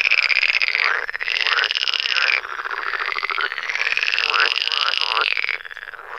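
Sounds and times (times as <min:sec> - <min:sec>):
pool frogs croaking in chorus in a forest: 0:00.0 - 0:06.1.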